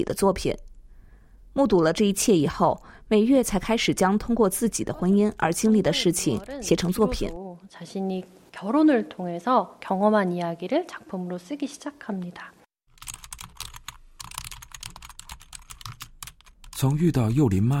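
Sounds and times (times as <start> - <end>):
speech: 0.0 - 0.7, 1.6 - 12.6, 16.8 - 17.7
rapid typing on a computer keyboard: 12.9 - 16.8.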